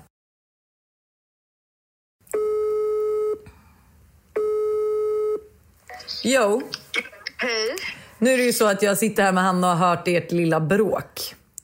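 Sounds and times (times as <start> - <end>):
outgoing phone call ringing tone: 2.4 - 3.4, 4.4 - 6.2
speech: 6.2 - 11.4.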